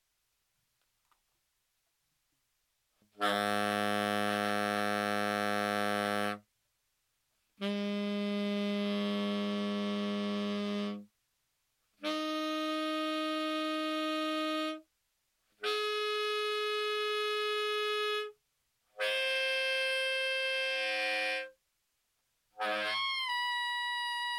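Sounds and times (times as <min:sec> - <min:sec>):
B-flat tenor saxophone overtones: 0:03.2 - 0:06.5, 0:07.6 - 0:11.1, 0:12.0 - 0:14.9, 0:15.6 - 0:21.6, 0:22.6 - 0:24.3.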